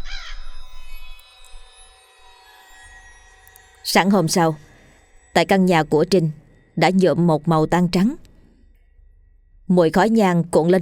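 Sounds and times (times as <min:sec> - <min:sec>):
crow cawing as it takes off: 0:00.0 - 0:00.5
speech: 0:03.9 - 0:04.7, 0:05.3 - 0:08.2, 0:09.7 - 0:10.8.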